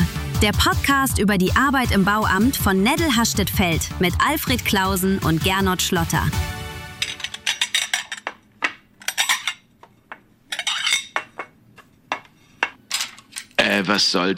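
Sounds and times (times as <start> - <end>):
speech: 0.4 - 6.6, 13.8 - 14.3
dishes, crockery and cutlery clattering and clinking: 7.0 - 13.6.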